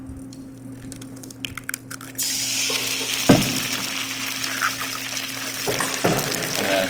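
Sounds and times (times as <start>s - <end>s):
egg cracked into a hot pan: 0.2s - 6.8s
egg sizzling in a hot pan: 2.2s - 6.8s.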